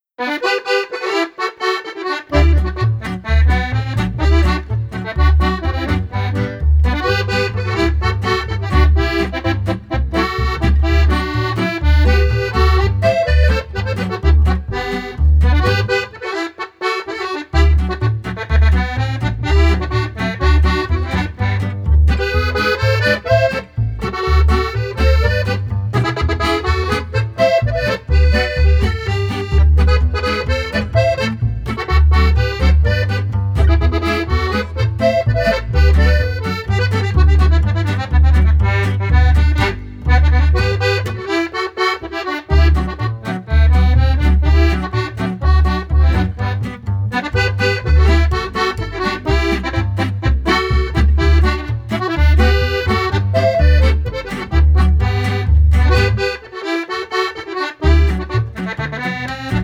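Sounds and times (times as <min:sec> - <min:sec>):
polka band playing: 0:00.2 - 0:59.6.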